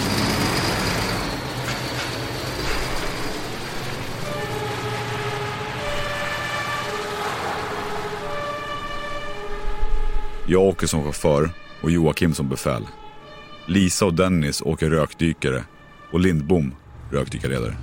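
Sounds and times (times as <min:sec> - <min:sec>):
fire engine heavy engine rumble: 0:00.0 - 0:08.4
fire engine two-tone siren wailing: 0:02.6 - 0:17.8
speech: 0:10.5 - 0:13.0, 0:13.7 - 0:17.8.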